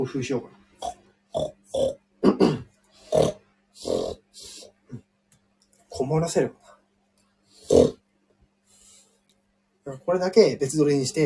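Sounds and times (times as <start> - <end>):
speech: 0.0 - 1.9, 6.1 - 6.6, 9.9 - 11.2
person imitating pig snorting and grunting for a jingle: 0.8 - 5.1, 7.6 - 8.0.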